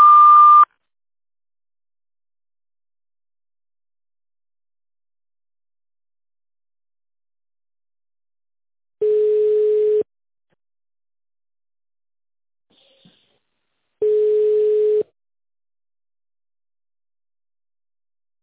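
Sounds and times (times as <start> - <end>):
telephone beep tone on an automated answering line: 0.0 - 0.6, 9.0 - 10.1, 14.0 - 15.0
lower-pitched steady telephone beep before tone dialing: 9.0 - 10.1, 14.0 - 15.1.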